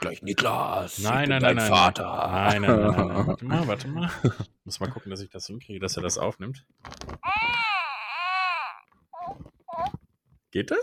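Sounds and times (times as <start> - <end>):
speech: 0.0 - 7.6, 10.5 - 10.8
laughter: 2.4 - 4.5
baby-doll toy crying and whimpering: 7.2 - 10.0.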